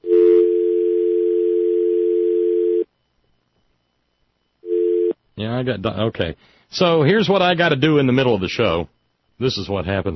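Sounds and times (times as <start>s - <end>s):
telephone dial tone on an unanswered line: 0.1s - 2.8s
speech: 5.4s - 10.1s.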